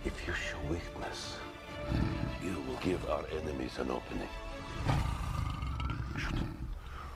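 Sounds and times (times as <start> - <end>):
speech: 0.1 - 5.1, 6.2 - 6.6
lion roaring: 1.8 - 2.5, 4.8 - 6.8.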